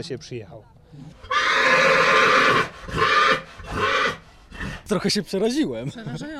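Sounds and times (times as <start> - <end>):
speech: 0.0 - 3.1, 4.9 - 6.3
horse set for a competition neighing: 1.1 - 4.9.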